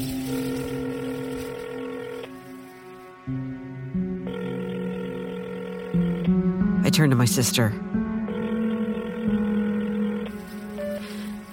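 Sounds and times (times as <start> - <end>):
electronic phone ringback tone: 0.0 - 2.6, 4.2 - 6.6, 8.3 - 11.5
speech: 6.9 - 8.0.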